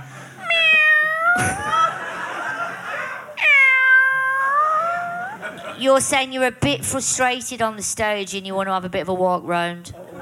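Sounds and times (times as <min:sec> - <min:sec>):
person imitating cat meows: 0:00.4 - 0:01.8, 0:03.4 - 0:05.4
speech: 0:01.4 - 0:01.7, 0:05.8 - 0:10.0
laughter: 0:01.4 - 0:03.4, 0:04.8 - 0:06.0, 0:10.0 - 0:10.1.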